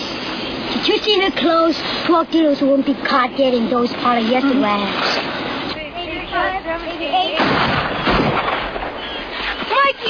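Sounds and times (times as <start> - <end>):
speech: 0.8 - 5.3, 6.3 - 7.9
loud dense burst of gunshots: 7.4 - 9.7.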